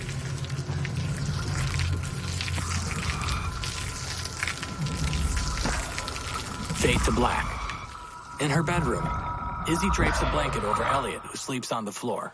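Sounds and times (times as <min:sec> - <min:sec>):
hose water spraying into a storm drain: 0:00.0 - 0:08.3
low gurgling water: 0:00.0 - 0:11.5
speech: 0:06.9 - 0:07.6, 0:08.4 - 0:12.3.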